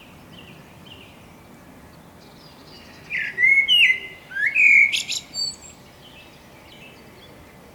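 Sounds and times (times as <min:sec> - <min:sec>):
Common blackbird Turdus merula song: 0:03.2 - 0:05.6.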